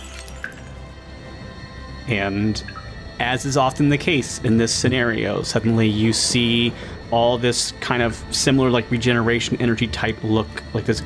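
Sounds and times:
bottle smashing down onto a glass: 0.0 - 0.8
speech: 2.1 - 11.0.

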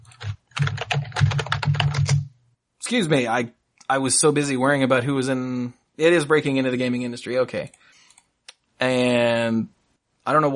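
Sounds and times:
computer clicking: 0.0 - 2.3
typing on a computer keyboard: 0.0 - 2.3
speech: 2.9 - 7.9, 8.8 - 10.5.

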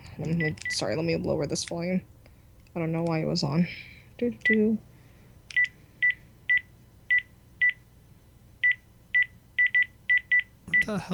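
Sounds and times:
faint low hum: 0.0 - 11.1
speech: 0.2 - 2.2, 2.8 - 4.9, 10.9 - 11.1
house phone keypad beeps: 0.4 - 1.0, 5.5 - 7.8, 8.6 - 10.9.

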